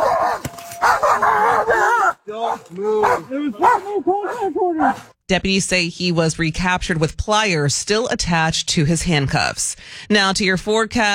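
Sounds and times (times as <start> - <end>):
dog barking and yelping: 0.0 - 5.2
raised voices: 0.0 - 5.2
speech: 2.3 - 11.1.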